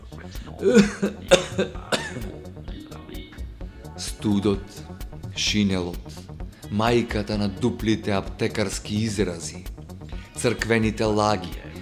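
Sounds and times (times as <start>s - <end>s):
speech: 0.3s - 2.2s, 4.2s - 9.7s, 10.4s - 11.6s
person feigning a cough: 0.6s - 2.5s.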